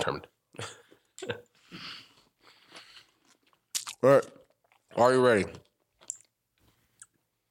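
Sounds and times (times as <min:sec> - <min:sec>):
speech: 0:00.0 - 0:01.5, 0:04.0 - 0:04.4, 0:05.0 - 0:05.6
person chewing and crunching cereal: 0:02.5 - 0:07.2.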